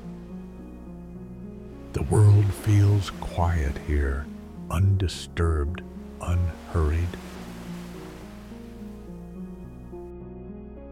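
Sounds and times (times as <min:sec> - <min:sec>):
gentle ocean waves rolling onto shore: 0:01.6 - 0:09.9
speech: 0:02.0 - 0:07.4.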